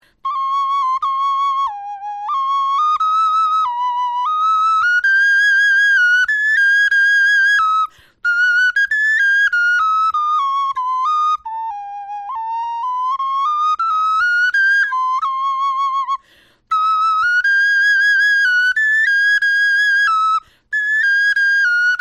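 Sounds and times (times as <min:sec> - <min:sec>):
bone flute melody: 0:00.2 - 0:22.0.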